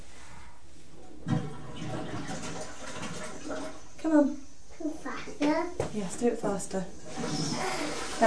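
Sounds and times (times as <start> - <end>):
toilet flushing: 1.1 - 4.3, 6.9 - 8.2
speech: 4.1 - 4.4, 6.0 - 8.2.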